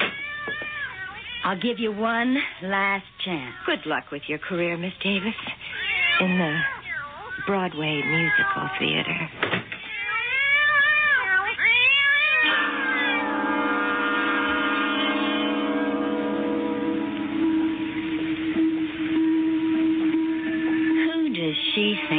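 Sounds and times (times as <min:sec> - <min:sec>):
cat meowing: 0:00.0 - 0:01.8, 0:05.0 - 0:13.3
steady tonal hum: 0:01.1 - 0:09.3, 0:12.3 - 0:22.1
speech: 0:01.4 - 0:06.8, 0:07.4 - 0:09.7.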